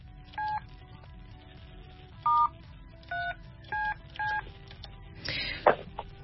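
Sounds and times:
touch-tone beeps of a phone number being dialed: 2.3 - 2.5, 3.1 - 4.4.

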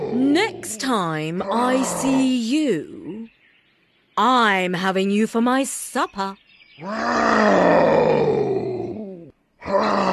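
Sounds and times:
angry tigress roaring and growling: 0.0 - 2.4, 6.8 - 10.1
speech: 0.4 - 3.1, 4.2 - 8.5.

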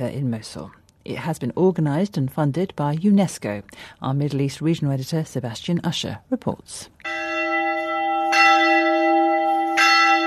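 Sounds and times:
speech: 0.0 - 7.1
church bells ringing: 7.0 - 10.2.

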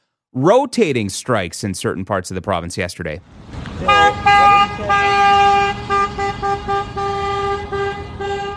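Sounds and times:
speech: 0.3 - 5.8
busy street background: 2.4 - 8.5
car horns honking at a picket line: 3.7 - 8.5.

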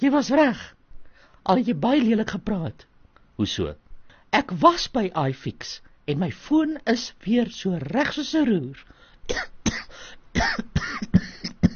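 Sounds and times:
speech: 0.0 - 0.8, 1.4 - 11.2
rough throaty coughs with voiced rasps: 9.3 - 11.7.

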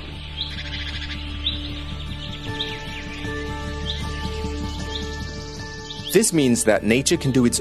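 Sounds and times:
birds chirping in a cemetery: 0.0 - 7.5
speech: 6.1 - 7.5.

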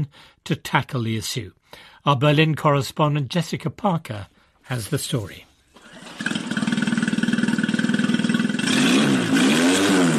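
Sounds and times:
speech: 0.0 - 5.5
boat engine starting up and revving: 5.8 - 10.1.

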